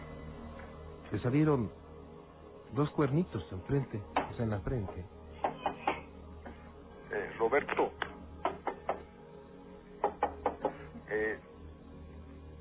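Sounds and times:
speech: 0:01.1 - 0:01.8, 0:02.7 - 0:05.2, 0:07.1 - 0:08.1, 0:11.1 - 0:11.5
sharp knocks on a door: 0:04.2 - 0:06.0, 0:08.4 - 0:09.0, 0:10.0 - 0:10.8.

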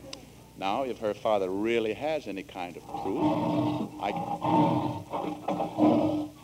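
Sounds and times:
speech: 0:00.6 - 0:06.2
lion roaring: 0:02.8 - 0:06.4.

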